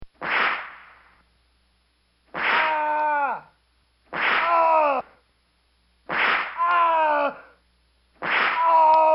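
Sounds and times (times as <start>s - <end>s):
whips lashing a man: 0.2s - 1.0s, 2.3s - 2.9s, 4.1s - 4.7s, 6.1s - 6.6s, 8.2s - 9.0s.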